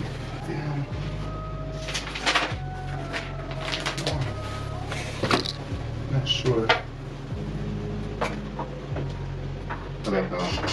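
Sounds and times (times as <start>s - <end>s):
steady low electrical hum: 0.0s - 10.7s
squeaky chair creaking and groaning: 1.8s - 5.7s.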